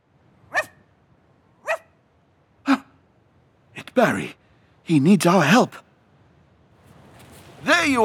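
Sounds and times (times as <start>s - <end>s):
dog barking: 0.5s - 0.8s, 1.6s - 1.9s
speech: 4.0s - 5.8s, 7.6s - 8.0s.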